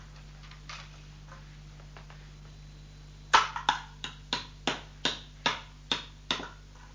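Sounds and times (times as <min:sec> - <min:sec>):
hammer striking nails while building a small house: 0:03.4 - 0:06.6.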